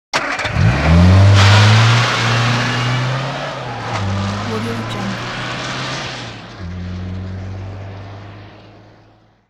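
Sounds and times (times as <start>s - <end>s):
Mini car starting up and driving away: 0.2s - 4.5s, 5.2s - 9.4s.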